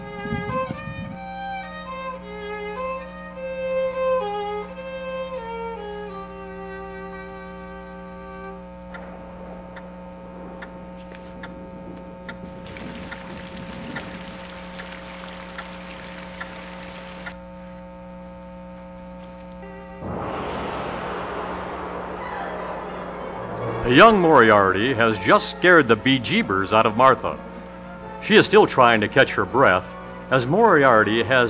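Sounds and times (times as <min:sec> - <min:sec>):
steady low drone: 0:00.0 - 0:31.4
underwater bubbling of air bubbles rising: 0:10.4 - 0:17.2
rushing swell of water: 0:20.0 - 0:24.6
speech: 0:23.9 - 0:27.5, 0:28.3 - 0:31.4.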